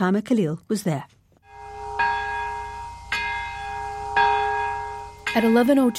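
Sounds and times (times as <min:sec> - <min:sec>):
speech: 0:00.0 - 0:01.2, 0:05.3 - 0:05.9
twin cathedral bells ringing in unison in Nagasaki Japan: 0:01.4 - 0:05.9.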